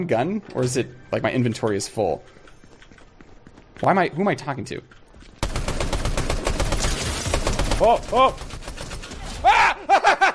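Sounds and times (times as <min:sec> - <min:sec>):
speech: 0:00.0 - 0:02.4, 0:03.8 - 0:05.0, 0:07.8 - 0:08.5
rapid automatic gunfire in a video game: 0:05.4 - 0:09.2
person exclaiming and groaning: 0:09.4 - 0:09.9
laughter: 0:09.5 - 0:10.3.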